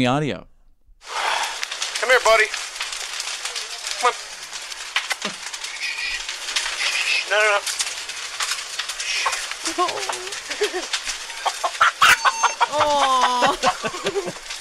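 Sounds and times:
speech: 0.0s - 1.2s, 2.1s - 2.7s, 4.0s - 4.3s, 5.2s - 5.4s, 7.3s - 7.8s, 9.7s - 14.5s
crackling roaring shed fire: 0.6s - 14.5s
fire pops and snaps: 1.0s - 12.7s
laughter: 9.3s - 14.5s
chicken clucking anxiously: 11.4s - 13.0s.

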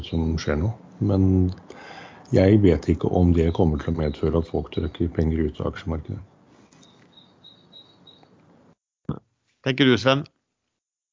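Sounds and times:
steady outdoor hiss: 0.0s - 8.7s
speech: 0.1s - 6.3s, 9.6s - 10.4s
birds chirping heard through an open balcony door: 1.6s - 8.6s.

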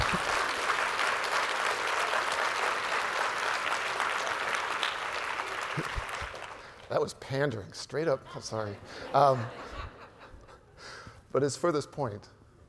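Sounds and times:
audience applause: 0.0s - 6.9s
laughter: 5.7s - 6.4s, 8.2s - 10.7s
speech: 6.9s - 9.8s, 11.3s - 12.4s.

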